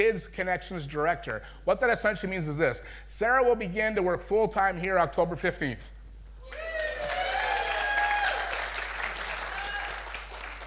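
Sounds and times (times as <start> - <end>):
speech: 0.0 - 6.7
faint cheering voices: 6.4 - 8.6, 9.4 - 10.2
audience applause: 6.5 - 10.6.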